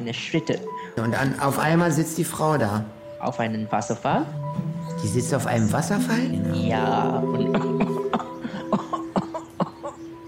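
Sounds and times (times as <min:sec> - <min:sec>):
speech: 0:00.0 - 0:07.8
old woman coughing with short throaty bursts: 0:07.5 - 0:10.2.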